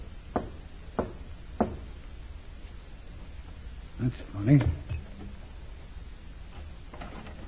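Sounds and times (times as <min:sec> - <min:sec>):
man knocking on a wooden side door of a building in a city warehouse section: 0:00.3 - 0:01.9
speech: 0:04.0 - 0:04.8.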